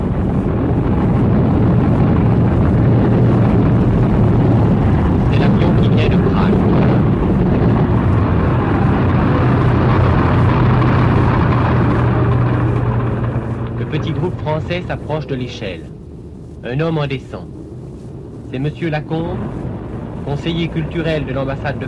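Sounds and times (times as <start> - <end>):
aircraft landing and taking off on an airfield: 0.0 - 16.0, 17.1 - 21.8
lead-toned military airplane engines rumbling while taxiing on an airfield: 0.0 - 21.8
speech: 14.7 - 16.0, 16.6 - 17.6, 18.5 - 21.8.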